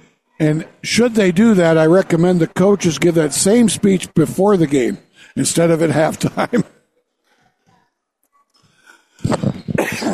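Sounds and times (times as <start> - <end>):
speech: 0.4 - 6.8
harsh coughs from a tickle in the throat: 9.2 - 10.1.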